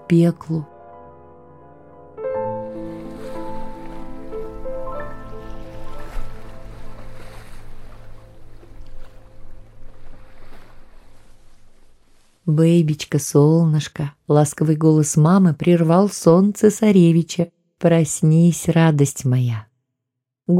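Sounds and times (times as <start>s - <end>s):
speech: 0.1s - 0.7s, 12.5s - 19.7s
sea waves lapping: 2.4s - 12.5s
sustained humming musical drone: 3.9s - 11.5s.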